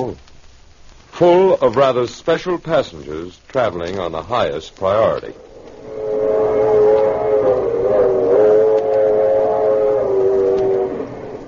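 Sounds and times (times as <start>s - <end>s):
speech: 0.0s - 0.3s, 1.2s - 6.0s
train whistle: 5.8s - 11.4s.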